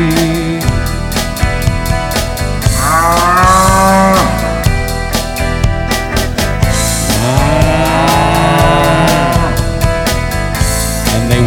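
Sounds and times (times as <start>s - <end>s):
busy musical backing with a steady pounding beat: 0.0s - 11.4s
cow mooing: 2.7s - 4.6s, 7.2s - 9.7s.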